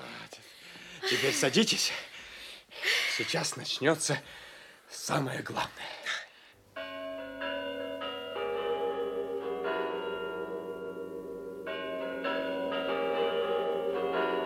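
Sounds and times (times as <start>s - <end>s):
speech: 1.1s - 2.1s, 3.2s - 6.0s
Spasskaya Tower clock bells chiming: 6.8s - 14.4s.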